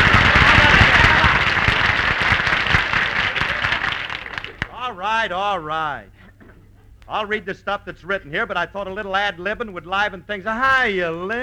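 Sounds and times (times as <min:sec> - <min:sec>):
studio audience applause: 0:00.0 - 0:05.0
laughter: 0:00.0 - 0:11.4
speech: 0:05.2 - 0:06.2, 0:07.1 - 0:11.4.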